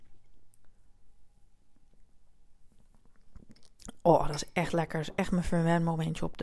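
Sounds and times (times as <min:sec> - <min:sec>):
person sipping cappuccino: 0:02.8 - 0:04.0
speech: 0:04.0 - 0:06.4.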